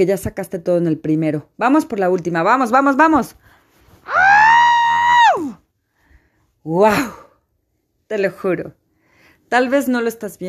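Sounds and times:
speech: 0.0 - 4.2, 6.6 - 7.2, 8.1 - 8.8, 9.5 - 10.4
scream muffled by a pillow over the mouth: 4.1 - 5.6.

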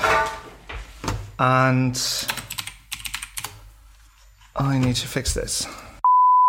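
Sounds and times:
speech: 1.4 - 2.3, 4.6 - 5.8
mechanical keyboard keys clacking: 2.3 - 3.6.

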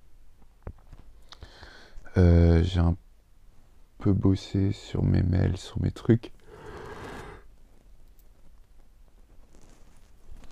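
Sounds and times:
speech: 2.2 - 3.0, 4.0 - 6.4
person yawning: 6.5 - 7.4.

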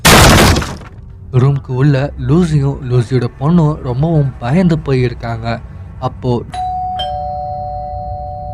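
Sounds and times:
speech: 1.3 - 6.6
house doorbell chimes: 6.5 - 8.5.

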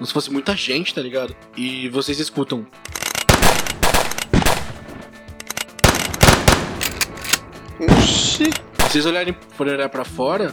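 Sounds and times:
speech: 0.0 - 3.0, 7.8 - 10.5
rapid bursts of gunfire from many weapons: 3.2 - 5.2, 5.8 - 9.3.

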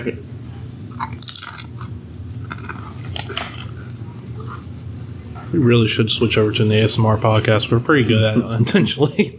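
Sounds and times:
speech: 0.0 - 0.4, 5.5 - 9.3
low steady hum: 0.0 - 9.3
wet chewing: 0.9 - 4.7
biting and crunching a barbecue-flavored tortilla chip: 1.0 - 4.7.

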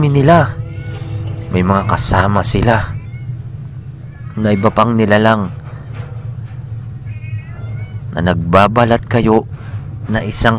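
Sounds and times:
speech: 0.0 - 0.6, 1.5 - 3.0, 4.4 - 5.6, 8.2 - 9.5, 10.1 - 10.5
steady low rumble: 0.0 - 10.5
small cats yowling: 0.4 - 8.2.

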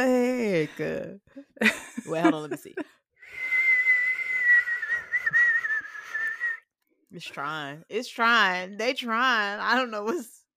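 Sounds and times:
speech: 0.0 - 3.0, 7.1 - 10.4
person whistling a single sustained wavering note: 3.3 - 6.6.

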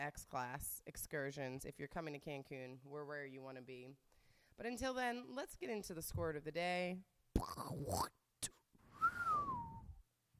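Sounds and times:
speech: 0.0 - 8.6
brief warbling vocal noise: 7.4 - 8.2
person whistling with a downward sliding pitch: 8.9 - 10.0.

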